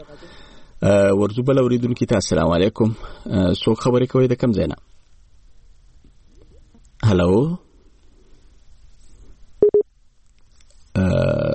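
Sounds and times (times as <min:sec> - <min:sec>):
speech: 0:00.0 - 0:04.9, 0:07.0 - 0:07.6, 0:11.0 - 0:11.5
disconnected telephone line tone with low-pitched beeps as a call drops: 0:09.6 - 0:09.8.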